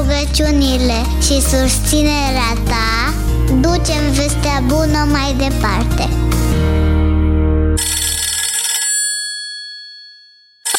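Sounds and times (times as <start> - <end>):
speech: 0.4 - 6.8
telephone ringing: 7.8 - 10.7.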